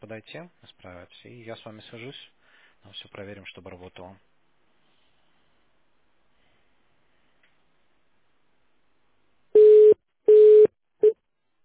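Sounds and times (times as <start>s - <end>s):
speech: 0.0s - 4.3s
telephone busy tone after a dropped call: 9.6s - 11.2s.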